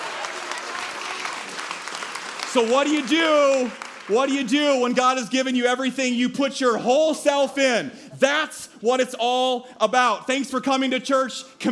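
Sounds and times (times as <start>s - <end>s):
church audience applause: 0.0s - 5.0s
speech: 2.5s - 11.6s.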